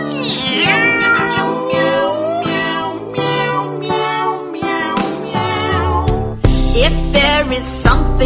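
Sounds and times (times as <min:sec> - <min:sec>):
cat meowing: 0:00.0 - 0:06.4
steady musical backing with deep sustained bass notes: 0:05.4 - 0:08.2.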